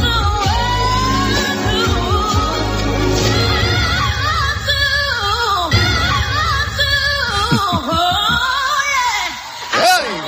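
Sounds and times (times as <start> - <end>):
dense backing music: 0.0 - 8.7
crowd noise: 0.7 - 10.2
live singer's voice cracking on a high note: 5.9 - 9.4
laughter: 7.1 - 10.2.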